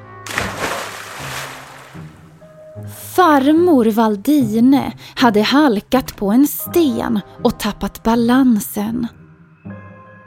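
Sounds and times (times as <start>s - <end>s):
person plunging into a river with a splash: 0.2s - 2.4s
speech: 3.2s - 9.2s.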